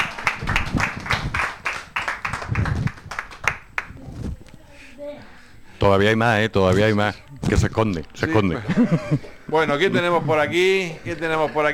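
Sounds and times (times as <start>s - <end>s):
small group applauding: 0.0s - 4.0s
speech: 5.8s - 11.7s
laughter: 8.3s - 11.7s.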